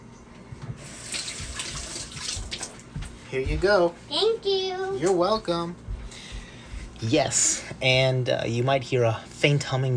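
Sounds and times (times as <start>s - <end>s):
kitchen tap running water over a cucumber being washed: 0.6s - 3.1s
speech: 3.3s - 5.8s, 7.0s - 9.9s.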